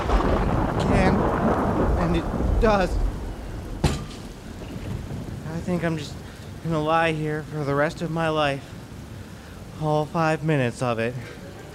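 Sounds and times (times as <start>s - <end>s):
sharp crack of thunder from a lightning strike: 0.0s - 9.0s
steady rain-like hiss: 0.0s - 11.7s
speech: 2.2s - 3.1s, 5.7s - 8.8s, 9.8s - 11.4s.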